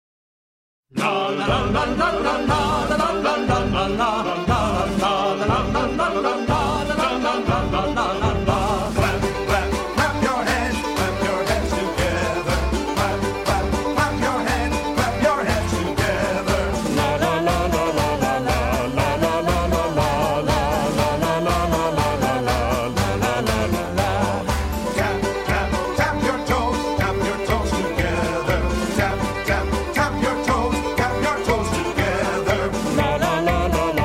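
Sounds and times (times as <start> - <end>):
children's song about clapping hands: 0.9 - 34.0.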